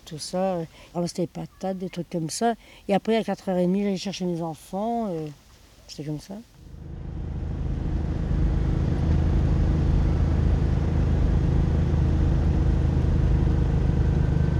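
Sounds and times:
speech: 0:00.1 - 0:07.0
car engine droning while driving slowly uphill: 0:06.7 - 0:14.5.

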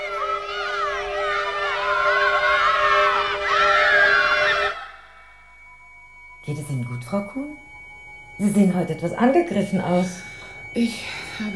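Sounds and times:
neighbours' children screaming: 0:00.0 - 0:05.4
speech: 0:06.6 - 0:07.7, 0:08.4 - 0:11.5.

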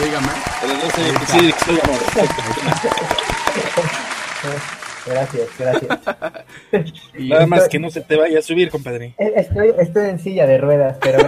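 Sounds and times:
applause: 0:00.0 - 0:06.0
laughter: 0:00.0 - 0:07.5, 0:11.0 - 0:11.2
speech: 0:00.2 - 0:03.2, 0:04.4 - 0:11.2.

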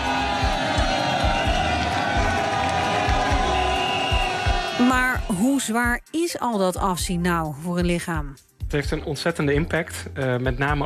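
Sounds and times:
roadside crowd cheering and clapping for Tour de France riders: 0:00.0 - 0:05.7
speech: 0:05.6 - 0:10.8.

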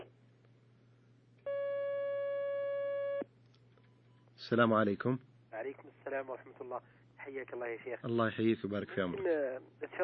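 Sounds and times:
faint low hum: 0:00.0 - 0:10.0
telephone line tone as an incoming call connects: 0:01.5 - 0:03.2
speech: 0:04.5 - 0:10.0.

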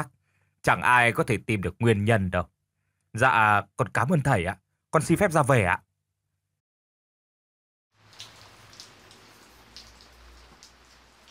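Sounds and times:
speech: 0:00.0 - 0:05.9
sudden rain: 0:08.0 - 0:11.3.

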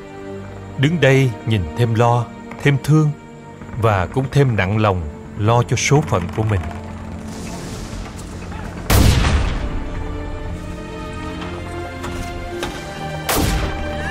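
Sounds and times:
speech: 0:00.8 - 0:03.2, 0:03.8 - 0:06.8
105 mm artillery guns firing: 0:07.3 - 0:10.1, 0:13.2 - 0:14.0.

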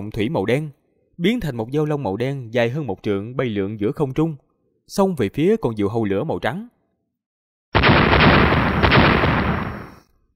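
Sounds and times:
speech: 0:00.0 - 0:06.7
explosion sound effect for a midair blast of white fire: 0:07.8 - 0:10.0.

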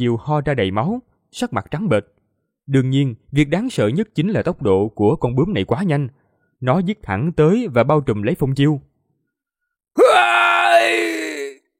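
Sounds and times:
speech: 0:00.0 - 0:08.9
man screaming in agony after being struck in a fight: 0:10.0 - 0:11.7.

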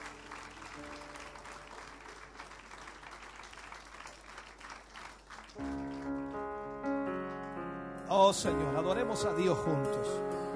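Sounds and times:
congregation applause of praise during a church celebration service: 0:00.0 - 0:07.7
speech: 0:08.1 - 0:10.4.

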